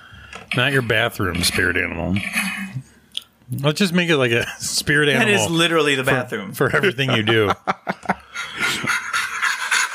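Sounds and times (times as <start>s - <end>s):
speech: 0.5s - 2.8s, 3.5s - 8.1s
laughter: 6.6s - 9.3s
person panting heavily like a gorilla: 8.2s - 9.8s.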